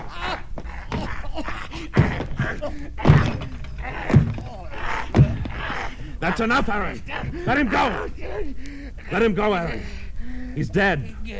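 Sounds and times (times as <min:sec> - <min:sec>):
strained grunting voices: 0:00.0 - 0:11.3
punches thudding in a fistfight: 0:01.8 - 0:05.9
speech: 0:02.6 - 0:04.2, 0:06.2 - 0:10.0, 0:10.6 - 0:11.3.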